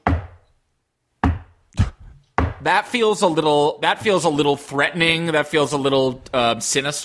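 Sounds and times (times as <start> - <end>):
slow heavy knocking on a solid surface: 1.2 - 2.6
speech: 2.6 - 7.0.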